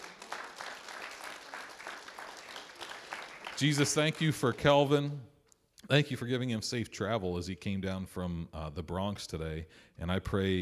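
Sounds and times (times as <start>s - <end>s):
audience applause: 0.0s - 4.9s
speech: 3.6s - 5.3s, 5.9s - 10.6s.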